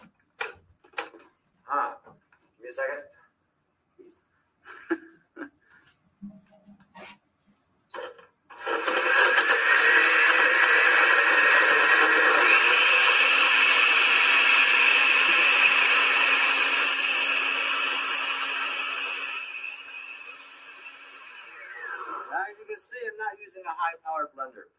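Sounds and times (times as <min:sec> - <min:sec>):
speech: 0:02.7 - 0:03.2
countertop blender whirring while blending a mixture: 0:07.9 - 0:22.6.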